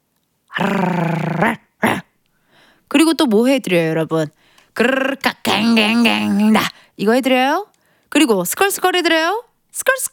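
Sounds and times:
person imitating a small dog growling: 0.5s - 2.1s, 4.8s - 6.8s
speech: 0.6s - 1.6s, 2.9s - 10.1s.

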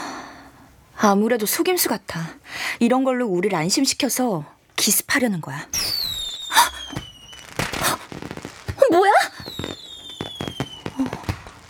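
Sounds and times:
speech: 1.0s - 6.0s
fireworks exploding: 5.7s - 11.6s.

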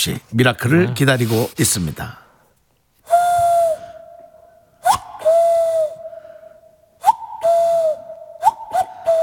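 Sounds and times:
speech: 0.0s - 2.2s
voice or whistle imitating a male cuckoo with hooting calls: 3.1s - 9.2s.

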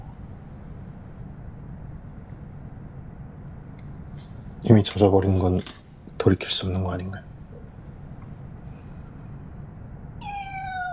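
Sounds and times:
steady low hum: 0.0s - 10.9s
speech: 4.6s - 7.3s
small kitten meowing: 10.2s - 10.9s.

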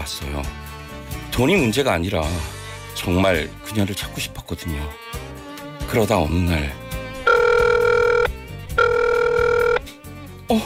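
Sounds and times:
speech: 0.1s - 5.1s, 5.9s - 6.8s, 10.5s - 10.6s
telephone ringback tone as a call goes through: 7.2s - 9.9s.

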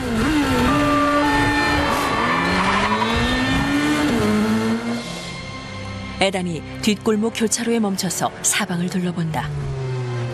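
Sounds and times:
motorcycle engine roaring as it speeds away into a back alley: 0.0s - 5.5s, 9.4s - 10.3s
tires squealing against the road: 0.1s - 4.9s
speech: 6.2s - 9.7s.

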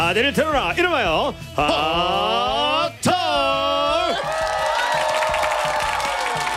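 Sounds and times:
speech: 0.1s - 2.8s
studio audience cheering and applauding: 4.0s - 6.5s.

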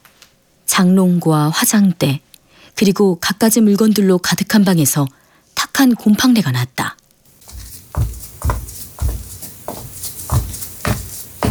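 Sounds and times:
speech: 0.8s - 2.2s, 2.8s - 5.2s, 5.8s - 7.0s
heavy footsteps on a hard floor heading toward a front door: 7.4s - 11.4s.

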